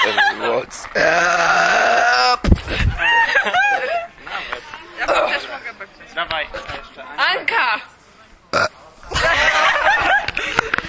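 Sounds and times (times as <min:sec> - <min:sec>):
laughter: 0:00.0 - 0:00.7, 0:02.6 - 0:05.5, 0:09.0 - 0:10.8
speech: 0:00.1 - 0:01.6
person burping deliberately: 0:01.0 - 0:02.4, 0:08.5 - 0:08.7.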